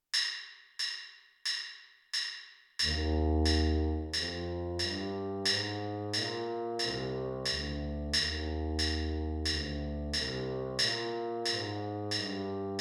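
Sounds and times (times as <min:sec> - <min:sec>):
tuba playing an E flat major scale: 0:02.8 - 0:12.8.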